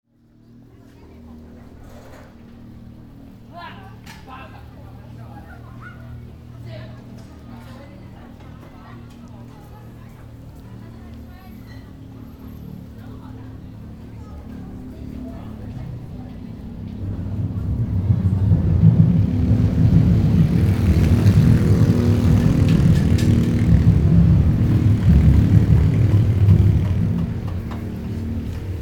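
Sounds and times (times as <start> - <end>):
motor train: 0.4 - 28.8.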